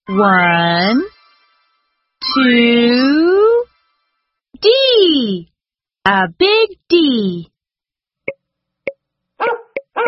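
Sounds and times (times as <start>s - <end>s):
speech: 0.1s - 1.1s, 2.3s - 3.5s, 4.6s - 7.5s
dog barking: 9.4s - 10.0s.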